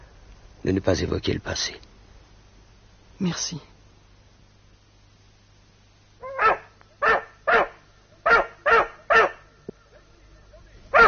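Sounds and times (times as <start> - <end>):
speech: 0.6 - 1.9, 3.2 - 3.7
dog barking: 6.2 - 9.5.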